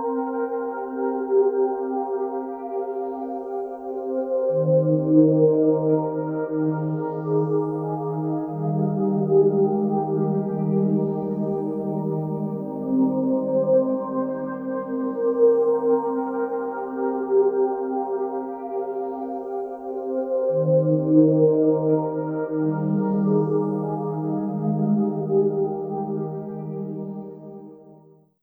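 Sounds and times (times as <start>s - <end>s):
synth pad: 0.1s - 27.9s.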